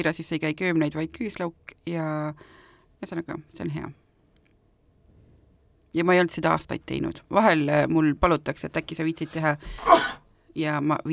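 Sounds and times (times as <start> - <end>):
speech: 0.0 - 4.0, 6.0 - 11.1
sneeze: 9.7 - 10.2.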